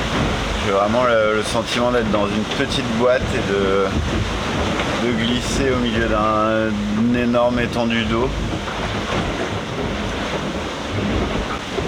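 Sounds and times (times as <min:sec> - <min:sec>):
wind and heavy rain sweeping over open water at sea: 0:00.0 - 0:11.8
speech: 0:00.6 - 0:08.6.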